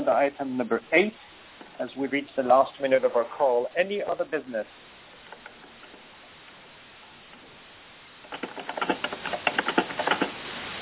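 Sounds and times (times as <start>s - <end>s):
speech: 0.0s - 4.9s
faint hiss: 0.0s - 10.8s
typing on a keyboard during a conference call: 8.3s - 10.4s.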